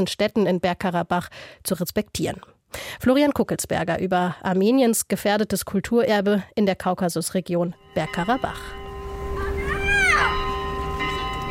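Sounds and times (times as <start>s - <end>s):
speech: 0.0s - 8.8s
church carillon ringing: 7.8s - 11.4s
faint children's shouts: 9.3s - 10.5s.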